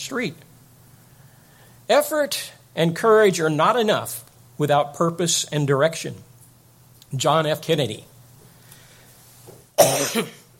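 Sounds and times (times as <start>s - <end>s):
speech: 0.1s - 0.5s, 1.9s - 6.3s, 7.1s - 8.1s, 9.8s - 10.4s
throaty cough: 9.8s - 10.5s.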